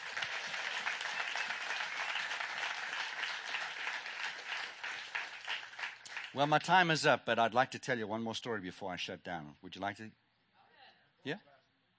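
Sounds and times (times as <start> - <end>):
crowd applauding: 0.0 - 7.0
speech: 6.3 - 10.2, 11.2 - 11.5.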